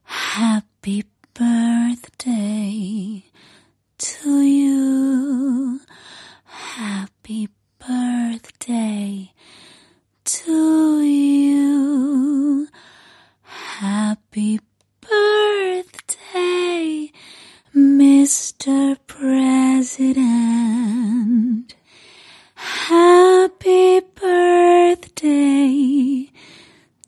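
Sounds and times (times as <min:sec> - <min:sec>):
solo female singing a birthday song: 0:00.0 - 0:09.6, 0:10.2 - 0:27.0.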